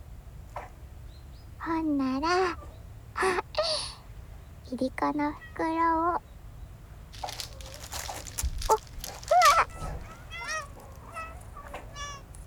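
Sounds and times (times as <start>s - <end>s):
speech: 1.7s - 2.6s, 3.2s - 3.4s, 4.7s - 6.3s
cats meowing as they gather on an island populated by cats: 7.2s - 12.4s
soft rustling: 7.2s - 12.4s.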